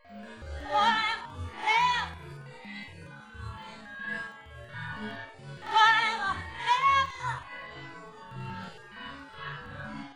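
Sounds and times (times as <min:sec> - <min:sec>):
lead vocal: 0:00.6 - 0:02.2, 0:05.6 - 0:07.6.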